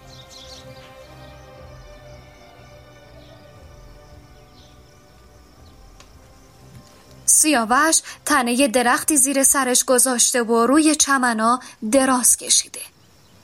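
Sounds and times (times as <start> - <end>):
birds chirping over a village: 0.0 - 13.4
faint insect-like buzz: 0.0 - 13.4
low rumble: 1.6 - 8.0
speech: 7.4 - 12.9.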